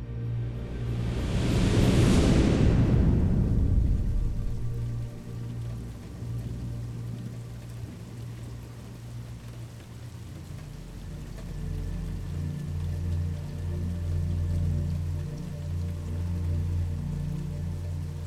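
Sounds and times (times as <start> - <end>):
faint rain hissing: 0.0 - 18.2
steady low rumbling: 0.0 - 18.2
thunderclap with bright crack and deep rumble: 0.9 - 5.9.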